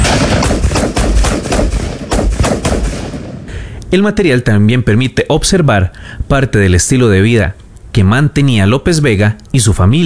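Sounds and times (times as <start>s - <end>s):
rapid gunfire from large-caliber weapons at shooting practice: 0.0s - 3.5s
speech: 3.9s - 10.0s.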